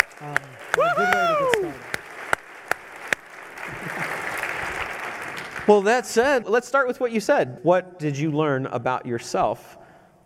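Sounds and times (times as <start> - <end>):
standing audience applauding: 0.0 - 6.3
speech: 0.2 - 1.1, 5.7 - 10.2
person cheering: 0.4 - 2.0.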